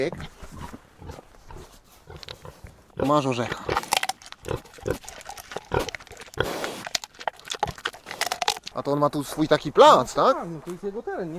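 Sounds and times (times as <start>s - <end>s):
speech: 0.0s - 0.4s, 3.0s - 3.7s, 8.8s - 11.3s
young wild boar grunting and snorting: 0.0s - 8.8s.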